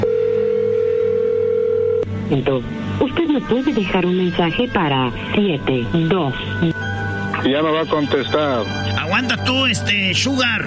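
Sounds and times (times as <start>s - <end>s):
telephone dial tone: 0.0s - 2.1s
speech: 2.3s - 6.7s, 7.4s - 10.6s.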